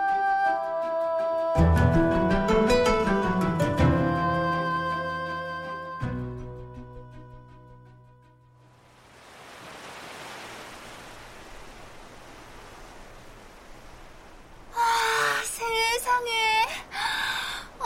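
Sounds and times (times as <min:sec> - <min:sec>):
musical passage: 0:00.0 - 0:08.8
ocean waves breaking on the shore below a seaside hill: 0:08.7 - 0:17.8
sea breeze blowing: 0:08.7 - 0:17.8.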